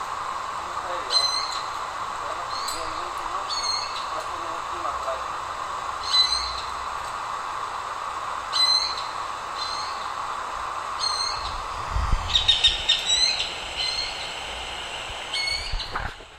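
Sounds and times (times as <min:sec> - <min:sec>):
steady hum: 0:00.0 - 0:16.3
Eared quetzal giving repeated squealing notes: 0:01.0 - 0:01.6, 0:02.5 - 0:04.1, 0:06.0 - 0:06.7, 0:08.5 - 0:10.0, 0:11.0 - 0:11.6, 0:12.3 - 0:14.3, 0:15.3 - 0:16.0
low rumbling: 0:11.3 - 0:16.3.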